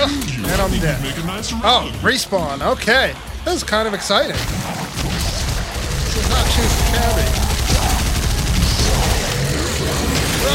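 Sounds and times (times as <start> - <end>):
speech: 0.0 - 5.1, 6.3 - 7.5
video game gunfire: 4.5 - 10.5.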